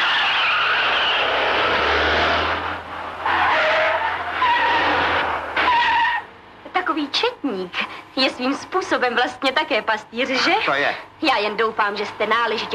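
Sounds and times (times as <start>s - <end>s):
car tires skidding and squealing as the vehicle takes a curve: 0.0s - 6.3s
car engine roar: 0.0s - 6.7s
speech: 7.5s - 12.7s.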